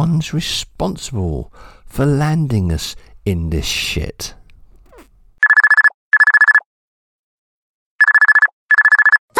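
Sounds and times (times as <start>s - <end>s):
speech: 0.2s - 4.4s
telephone ringing in double-ring bursts of electronic trills: 5.4s - 6.7s, 8.0s - 9.2s.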